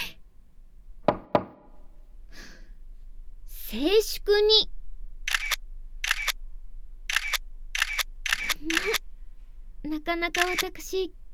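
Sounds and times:
speech: 0:03.7 - 0:04.8, 0:09.9 - 0:11.3
camera shutter clicks: 0:05.3 - 0:06.4, 0:07.1 - 0:09.0, 0:10.3 - 0:10.7.

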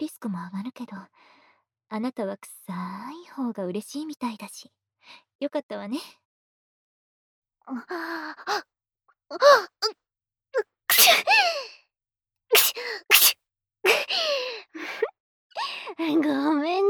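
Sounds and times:
speech: 0:00.2 - 0:06.2, 0:07.7 - 0:08.7, 0:09.3 - 0:11.8, 0:12.8 - 0:16.8
person sneezing: 0:10.9 - 0:11.2, 0:12.6 - 0:13.4.

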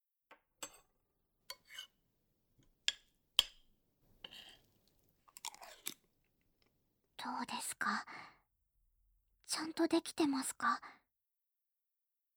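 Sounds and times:
chewing and crunching homemade meal: 0:04.8 - 0:06.1
speech: 0:07.4 - 0:08.2, 0:09.6 - 0:11.0.

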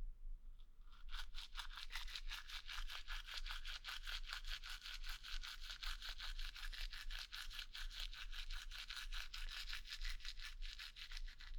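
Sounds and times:
toothbrush scrubbing teeth: 0:01.0 - 0:11.5.

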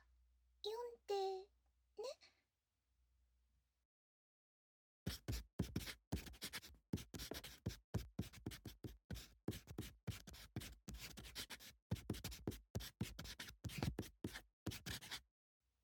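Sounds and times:
pen scratching on paper: 0:05.1 - 0:15.2.

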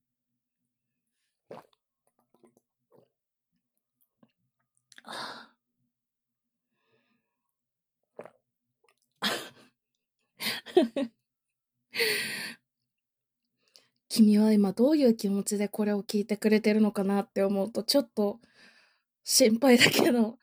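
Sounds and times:
person gulping water: 0:01.5 - 0:03.2, 0:08.1 - 0:09.6
speech: 0:10.8 - 0:11.2, 0:14.2 - 0:18.5, 0:19.2 - 0:20.4.

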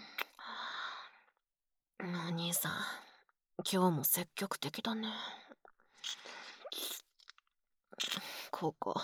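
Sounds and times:
wet kissing with tongues in a street: 0:00.2 - 0:00.4, 0:06.0 - 0:07.4, 0:08.0 - 0:08.4
speech: 0:02.0 - 0:05.4, 0:08.1 - 0:09.0
breathy slurping: 0:05.9 - 0:07.4, 0:08.0 - 0:08.5.

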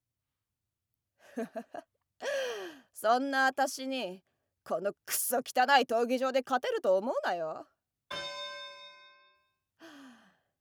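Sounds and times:
speech: 0:01.4 - 0:01.9, 0:03.0 - 0:07.7
starting bell of a fight in an arena: 0:08.1 - 0:09.4.

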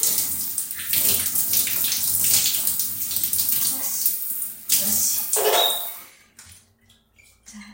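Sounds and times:
shower spray running while something is rinsed: 0:00.0 - 0:06.1.

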